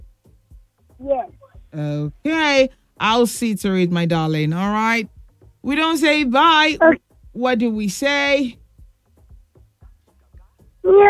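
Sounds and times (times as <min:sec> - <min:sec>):
soft low thumps: 0:00.0 - 0:11.0
speech: 0:01.0 - 0:08.6, 0:10.8 - 0:11.0
person imitating a cat meow: 0:10.9 - 0:11.0.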